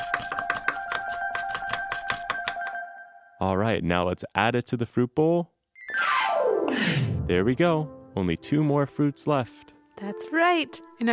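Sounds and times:
sideways hands tapping, mimicking chopping a banana: 0.0 - 2.8
speech: 3.4 - 6.1, 6.8 - 11.1.

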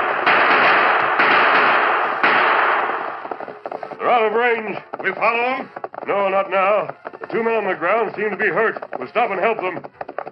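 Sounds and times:
gunshots in an old western radio drama: 0.0 - 5.3
speech: 4.2 - 10.0.

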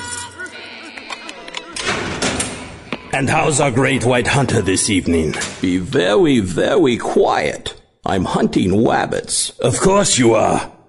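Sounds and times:
door swinging open with a loud rush: 0.0 - 6.3
murmuring: 0.2 - 5.6
speech: 3.2 - 10.8.

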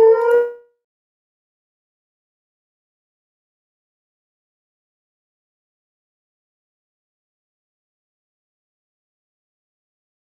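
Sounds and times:
dog howling: 0.0 - 0.6.

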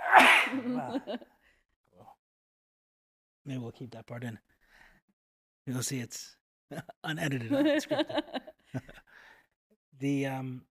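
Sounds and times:
person sneezing: 0.0 - 0.9
speech: 0.2 - 1.4, 3.4 - 4.6, 5.6 - 9.0, 10.0 - 10.7
laughter: 0.5 - 1.2, 7.5 - 9.0.

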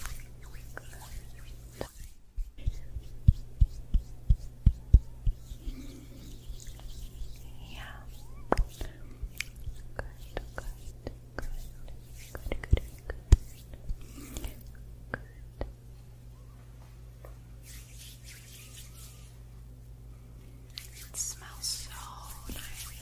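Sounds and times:
soft brushing and scratching through hair during a scalp massage: 0.0 - 14.0, 17.6 - 19.5, 20.7 - 23.0
steady low hum: 0.0 - 23.0.

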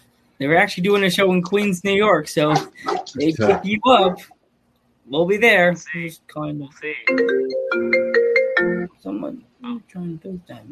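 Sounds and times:
speech: 0.4 - 4.4, 5.1 - 8.1, 9.0 - 10.7
phone ringtone ringing: 7.0 - 8.9.

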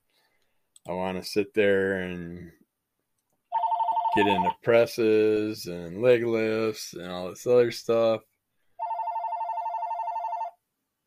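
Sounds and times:
speech: 0.9 - 2.6, 4.2 - 8.3
telephone ringing with electronic warbling trill: 3.5 - 4.6, 8.8 - 10.6.

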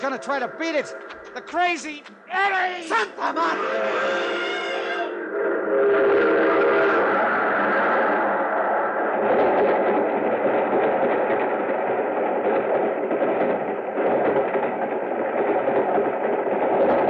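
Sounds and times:
laughter: 0.0 - 4.3
speech: 0.0 - 4.5, 5.4 - 6.5
train rumbling: 0.0 - 17.0
train horn: 3.2 - 7.2.

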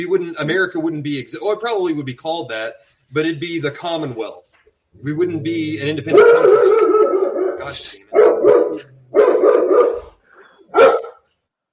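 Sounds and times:
speech: 0.0 - 10.0
dog barking: 6.1 - 11.2.

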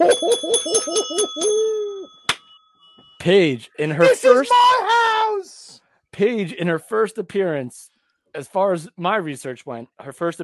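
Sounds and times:
hand bell ringing: 0.0 - 3.2
speech: 0.9 - 1.6, 3.2 - 5.0, 6.2 - 10.4.

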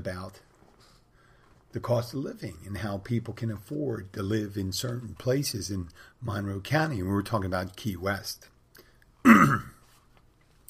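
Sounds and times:
speech: 0.0 - 0.5, 1.7 - 8.5, 9.2 - 9.7
gruff throat clearing: 9.2 - 9.8.

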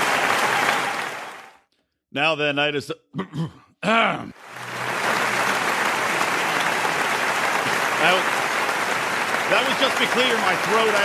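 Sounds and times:
audience clapping: 0.0 - 1.7, 4.3 - 11.0
speech: 2.1 - 4.6, 8.0 - 8.4, 9.5 - 11.0.

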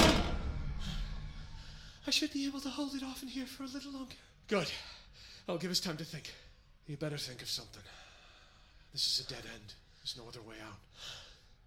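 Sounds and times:
heavy door shutting: 0.0 - 1.0
speech: 2.1 - 8.0, 8.9 - 11.2.

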